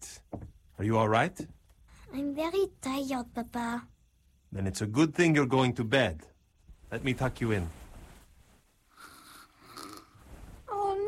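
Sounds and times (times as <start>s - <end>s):
speech: 0.8s - 3.9s, 4.5s - 6.3s, 6.9s - 7.8s
sleeping girl snoring softly: 8.9s - 11.0s.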